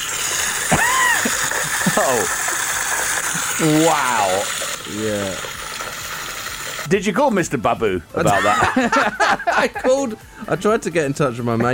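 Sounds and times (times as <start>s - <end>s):
water gushing from a leak in the ground: 0.0s - 7.0s
laughter: 0.7s - 2.3s, 8.2s - 10.8s
speech: 2.0s - 2.5s, 3.6s - 5.6s, 6.9s - 11.7s.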